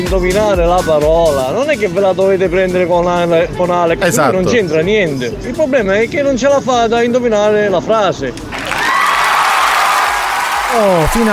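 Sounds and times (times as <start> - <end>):
speech: 0.0 - 8.6, 10.7 - 11.3
canned crowd applause sound effect: 8.4 - 11.3
scattered cheers: 8.5 - 11.3.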